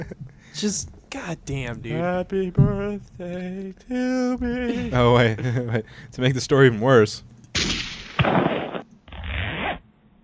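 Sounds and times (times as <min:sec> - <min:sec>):
speech: 0:00.0 - 0:07.3
zipper being pulled: 0:08.6 - 0:09.8.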